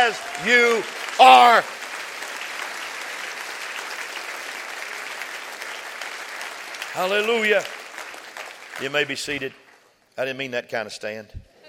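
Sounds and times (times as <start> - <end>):
speech: 0.0 - 1.8, 7.0 - 7.8, 8.8 - 9.6, 10.2 - 11.4
audience clapping: 0.0 - 10.0.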